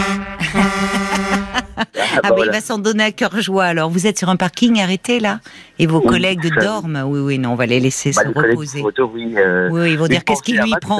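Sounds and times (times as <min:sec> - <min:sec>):
truck air horn honking: 0:00.0 - 0:01.7
laughter: 0:00.4 - 0:02.6
speech: 0:02.2 - 0:10.9.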